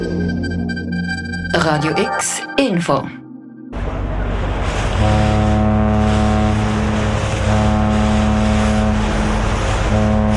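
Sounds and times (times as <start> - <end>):
cargo ship engine droning on the Rhine: 0.0 - 10.3
speech: 1.6 - 3.2
water rushing along a cargo ship hull on the Rhine: 3.8 - 10.3.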